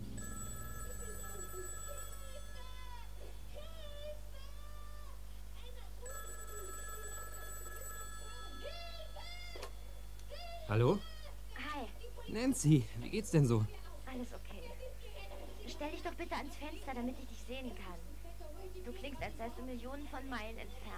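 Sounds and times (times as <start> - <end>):
telephone ringing in a house: 0.0 - 3.3, 6.0 - 10.2
television playing: 0.0 - 20.9
speech: 10.7 - 11.1, 12.3 - 14.5, 16.0 - 18.1, 18.7 - 20.9.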